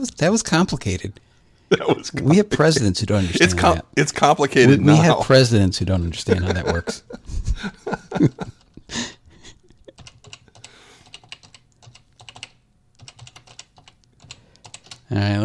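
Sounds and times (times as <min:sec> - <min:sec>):
speech: 0:00.0 - 0:09.2, 0:15.1 - 0:15.4
laughter: 0:01.7 - 0:03.8, 0:06.1 - 0:10.0
typing on a computer keyboard: 0:09.9 - 0:15.1.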